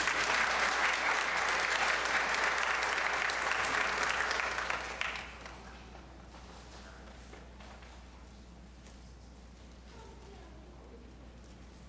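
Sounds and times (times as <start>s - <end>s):
large congregation applauding: 0.0s - 5.8s.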